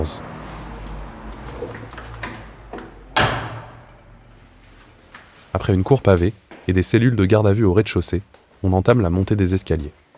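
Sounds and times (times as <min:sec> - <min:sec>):
speech: 0:00.0 - 0:00.3, 0:05.7 - 0:10.0
heavy security door shutting with a loud metallic clunk: 0:02.2 - 0:04.1
soft clicks and latch knocks of a heavy security door: 0:03.2 - 0:03.8.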